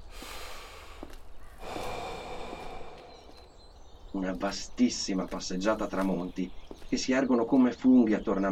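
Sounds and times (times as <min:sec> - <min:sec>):
heavy panting after climbing uphill: 0:00.0 - 0:03.4
speech: 0:04.2 - 0:08.4.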